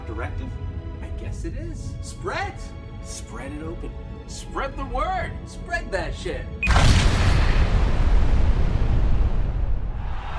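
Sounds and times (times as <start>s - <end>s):
speech: 0.2s - 8.4s
explosion with heavy rumble: 6.6s - 10.3s.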